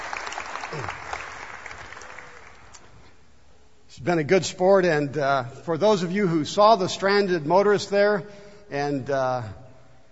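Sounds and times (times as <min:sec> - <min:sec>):
crowd applauding: 0:00.0 - 0:02.8
speech: 0:00.7 - 0:01.0, 0:04.0 - 0:09.6.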